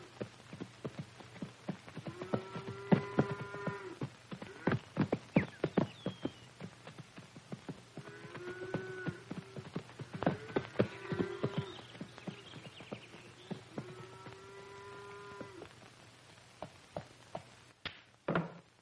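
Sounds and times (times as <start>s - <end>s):
horse hooves clip-clopping in trotting rhythm: 0.0s - 18.5s
drawn-out animal calls: 2.0s - 7.2s, 7.8s - 15.7s.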